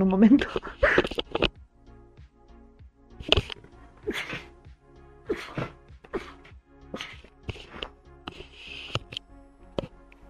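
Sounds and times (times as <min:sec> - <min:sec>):
speech: 0:00.0 - 0:01.2
gasping breaths: 0:00.4 - 0:01.5, 0:03.2 - 0:04.6, 0:05.2 - 0:09.2
sniffles: 0:00.4 - 0:01.5, 0:03.2 - 0:04.6, 0:05.2 - 0:09.2
woman with an allergy sneezing: 0:05.3 - 0:06.4.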